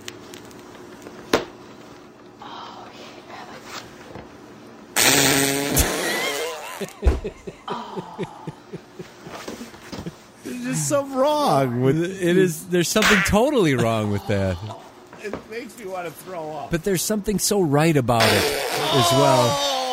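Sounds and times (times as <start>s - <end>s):
loud drawn-out sputtering fart: 5.0s - 7.0s, 18.2s - 19.9s
faint chuckling: 5.8s - 10.3s
speech: 10.9s - 19.8s.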